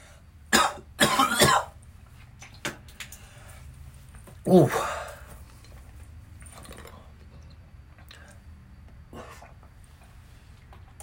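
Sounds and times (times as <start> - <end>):
person coughing loudly and harshly: 0.5 - 1.8
speech: 4.4 - 4.9.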